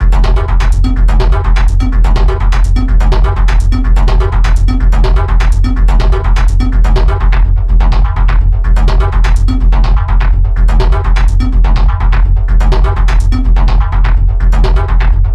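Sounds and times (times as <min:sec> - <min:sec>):
full drum kit loop in F: 0:00.0 - 0:15.3.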